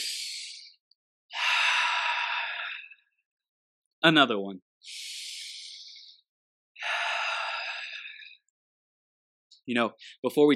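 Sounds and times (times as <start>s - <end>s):
deep breath: 1.3s - 3.2s, 4.8s - 6.2s, 6.8s - 8.4s
speech: 4.0s - 5.0s, 9.7s - 10.5s.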